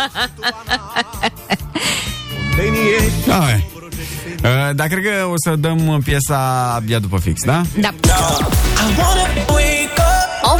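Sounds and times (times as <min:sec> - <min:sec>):
speech: 0:00.0 - 0:01.4, 0:02.6 - 0:03.7, 0:04.4 - 0:09.5
laughter: 0:00.0 - 0:02.0
fuller musical backing: 0:00.0 - 0:04.3, 0:07.4 - 0:10.5
rhythmic cat meows forming a song's melody: 0:01.9 - 0:03.3.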